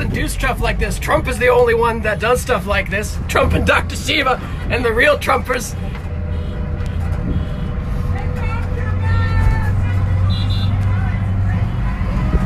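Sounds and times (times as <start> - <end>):
rumble of passing traffic on a busy street: 0.0 - 12.4
speech: 0.2 - 6.0
car horns honking at a group rolling through towns in central Massachusetts: 5.6 - 11.0.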